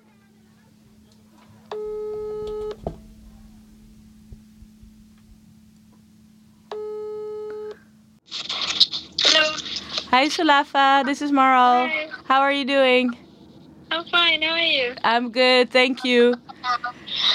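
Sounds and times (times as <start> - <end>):
constant low hum on the telephone line: 0.7 - 6.7
telephone ringback tone while an outgoing call waits to be answered: 1.8 - 2.8
speech: 10.1 - 13.2, 14.0 - 16.8
laughter: 15.9 - 17.3.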